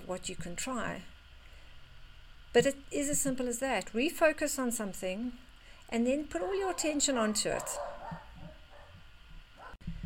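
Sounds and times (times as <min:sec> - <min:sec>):
speech: 0:00.1 - 0:01.1, 0:02.5 - 0:08.2
dogs barking and yipping: 0:06.4 - 0:09.8.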